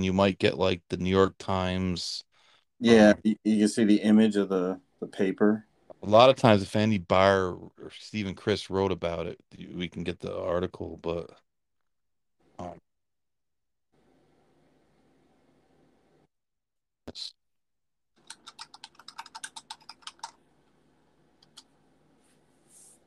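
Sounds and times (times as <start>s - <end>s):
speech: 0.0s - 11.4s, 12.6s - 12.8s, 17.1s - 17.4s
fast typing on a computer keyboard: 18.2s - 20.4s.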